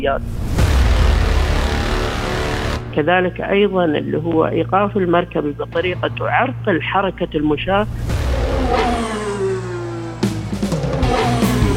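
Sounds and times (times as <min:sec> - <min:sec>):
speech: 0:00.0 - 0:00.8, 0:02.3 - 0:08.1
car engines revving: 0:00.4 - 0:03.0, 0:07.9 - 0:11.7.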